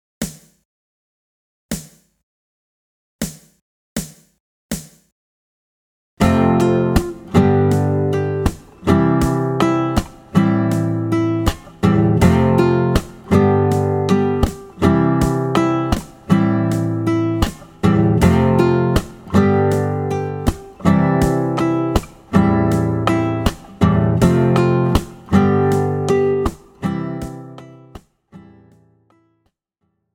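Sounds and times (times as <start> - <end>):
slow strummed refrain: 6.2 - 28.5.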